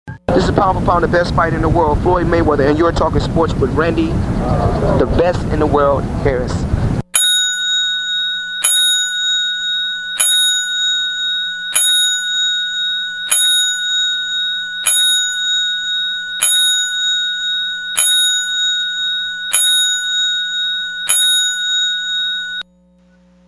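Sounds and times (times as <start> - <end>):
speech: 0.3 - 6.9
bright loud bell struck at a slow steady pace: 7.2 - 22.6.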